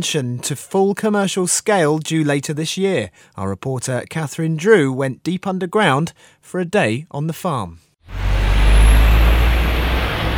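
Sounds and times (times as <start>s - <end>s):
speech: 0.0s - 8.2s
traffic roaring past on a busy high street in Clapham, South London: 8.1s - 10.3s.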